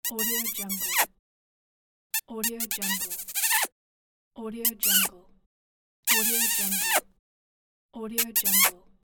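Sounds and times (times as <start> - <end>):
kiss: 0.1 - 1.1, 2.2 - 3.7, 4.7 - 5.1, 6.1 - 7.1, 8.2 - 8.8.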